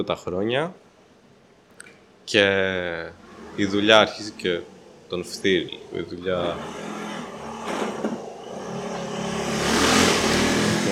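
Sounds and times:
speech: 0:00.0 - 0:00.8, 0:02.3 - 0:06.9
steady city street traffic noise: 0:02.6 - 0:10.9
motorbike engine revving in a city street: 0:02.8 - 0:10.9.

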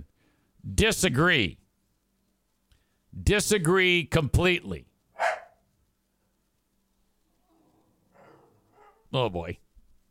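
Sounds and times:
speech: 0:00.6 - 0:01.6, 0:03.2 - 0:04.9, 0:09.1 - 0:09.6
dog barking: 0:05.2 - 0:05.6, 0:08.1 - 0:09.1.

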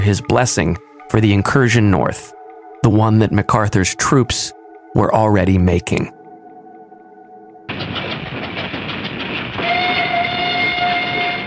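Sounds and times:
speech: 0:00.0 - 0:06.2
train loaded with war wearies and supplies rumbling along rails: 0:07.7 - 0:11.4
long sustained train whistle tone: 0:09.6 - 0:11.4.

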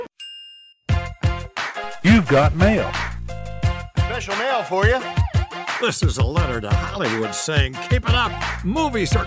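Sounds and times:
bright bell ding signalling mail time: 0:00.2 - 0:00.9
speech: 0:02.0 - 0:03.1, 0:04.2 - 0:09.2.

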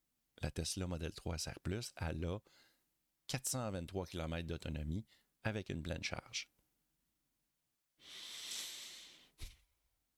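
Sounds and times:
speech: 0:00.4 - 0:02.7, 0:03.3 - 0:06.6, 0:08.0 - 0:08.4
heavy deliberate breath blown into a microphone: 0:08.0 - 0:09.6.

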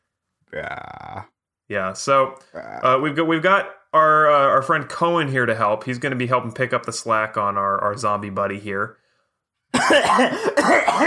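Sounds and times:
speech: 0:00.5 - 0:09.0, 0:09.9 - 0:11.0
throat clearing: 0:09.8 - 0:11.0.

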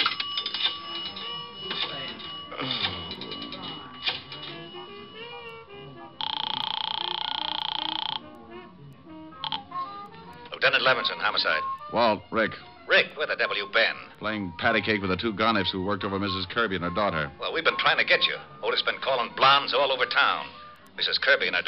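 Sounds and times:
telephone buzzing tone: 0:00.1 - 0:11.9
speech: 0:10.7 - 0:21.6.

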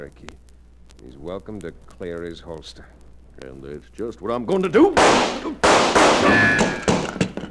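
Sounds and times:
speech: 0:00.0 - 0:06.9
gunshots: 0:04.8 - 0:07.2.

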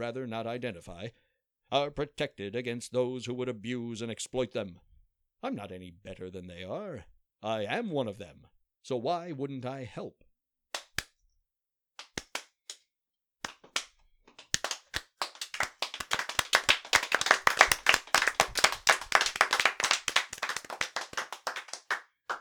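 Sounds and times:
speech: 0:00.0 - 0:10.2
applause from train passengers: 0:14.6 - 0:22.3.

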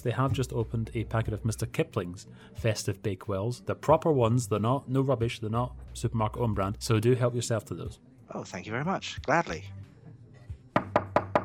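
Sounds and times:
speech: 0:00.0 - 0:09.8
sharp knocks on a door: 0:10.8 - 0:11.4.

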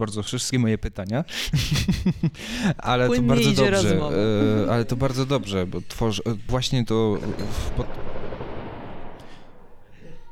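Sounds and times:
speech: 0:00.0 - 0:08.1
laughter: 0:01.4 - 0:06.4
thick continuous rumble of noise: 0:02.9 - 0:10.3
gunshots from a film shoot: 0:04.9 - 0:10.3.

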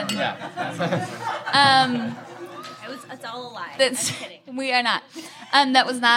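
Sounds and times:
speech: 0:00.0 - 0:02.3, 0:02.9 - 0:06.1
people laughing during a toast: 0:00.0 - 0:04.4
people chattering during a toast: 0:00.0 - 0:06.1.

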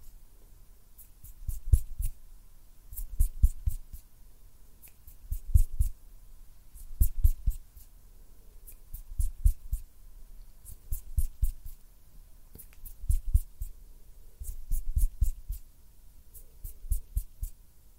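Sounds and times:
fingers fluttering with soft taps and thumps: 0:01.0 - 0:02.2, 0:03.0 - 0:04.1, 0:04.8 - 0:06.0, 0:06.8 - 0:07.9, 0:08.6 - 0:09.9, 0:10.7 - 0:11.8, 0:12.5 - 0:13.8, 0:14.4 - 0:15.7, 0:16.4 - 0:17.6.

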